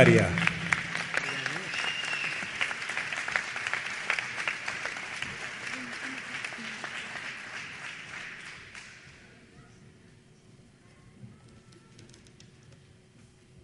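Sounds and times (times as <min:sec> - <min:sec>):
speech: 0:00.0 - 0:00.4
audience applause: 0:00.0 - 0:09.1.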